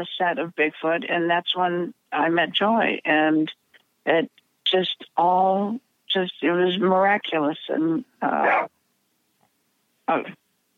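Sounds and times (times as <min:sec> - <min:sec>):
speech: 0:00.0 - 0:08.8, 0:10.1 - 0:10.4
dog barking: 0:08.4 - 0:08.7.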